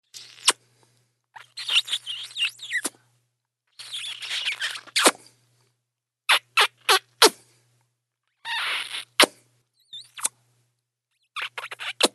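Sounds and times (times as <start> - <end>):
kissing: 0.1 - 0.6, 1.4 - 3.0, 3.7 - 5.3, 6.3 - 7.4, 8.5 - 10.4, 11.4 - 12.1.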